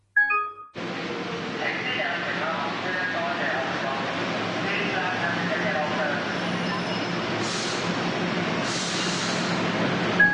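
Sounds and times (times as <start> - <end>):
subway train rumbling through a metro station: 0.8 - 10.3
brief hissing bursts: 8.6 - 9.5.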